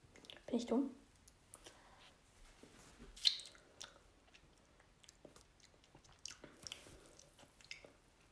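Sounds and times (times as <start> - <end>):
speech: 0.5 - 1.0
faint chewing of a bite from a homemade food bowl: 3.2 - 8.3.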